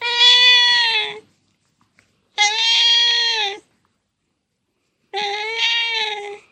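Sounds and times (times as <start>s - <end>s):
cat sweet voice: 0.0s - 1.3s, 2.4s - 3.7s, 5.1s - 6.5s.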